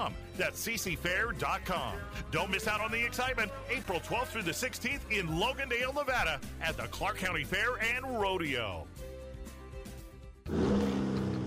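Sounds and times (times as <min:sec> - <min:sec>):
speech: 0:00.0 - 0:09.0
2023 Chevy Silverado pickup truck turbo high-output engine idling and revving: 0:10.4 - 0:11.4.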